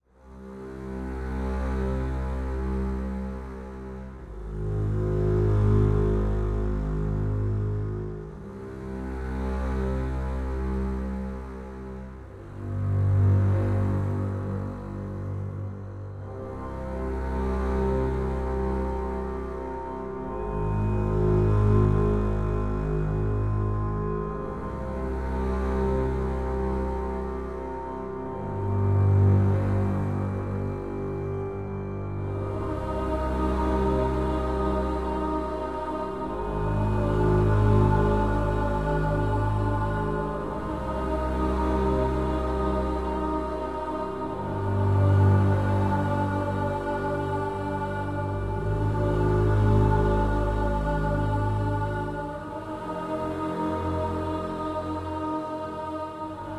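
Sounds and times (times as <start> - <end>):
underground music: 0.0 - 56.5.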